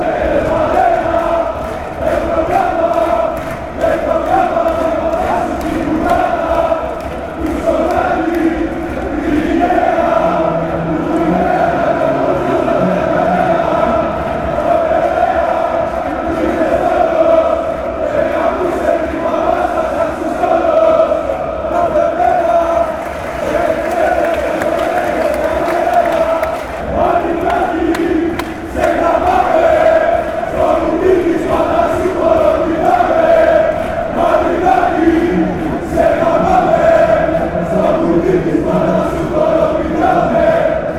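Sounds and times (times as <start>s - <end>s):
football supporters chanting: 0.0s - 40.9s.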